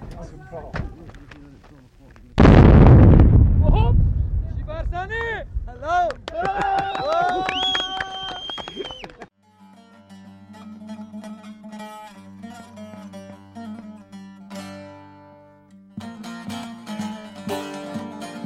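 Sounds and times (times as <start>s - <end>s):
people talking: 0.0s - 2.4s, 3.6s - 7.6s
bombing explosion in an Iraqi war zone: 2.4s - 6.3s.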